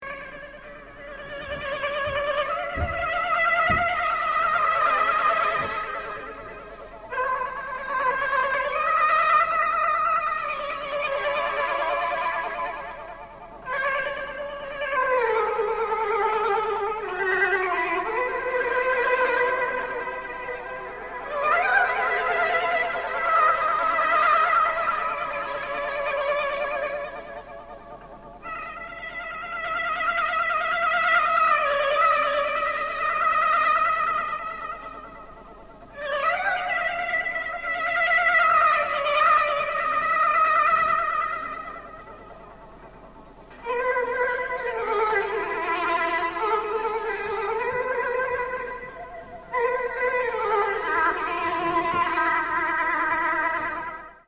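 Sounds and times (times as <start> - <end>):
warbly Bollywood music in Nepal: 0.0 - 54.2.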